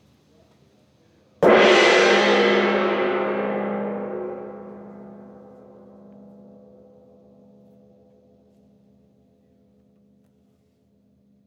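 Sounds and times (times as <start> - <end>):
small low distant gong stroke vibration: 1.4 - 7.6.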